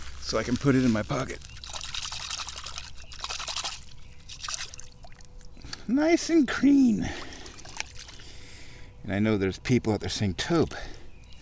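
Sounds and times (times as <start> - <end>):
running water rinsing a red golf ball: 0.0 - 5.8, 6.4 - 8.6
speech: 0.3 - 1.5, 5.9 - 7.2, 9.0 - 10.9.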